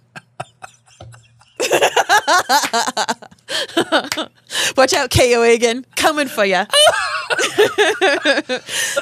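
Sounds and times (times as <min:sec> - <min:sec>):
person laughing: 0:00.0 - 0:04.3, 0:06.7 - 0:09.0
speech: 0:02.3 - 0:07.0, 0:07.6 - 0:09.0.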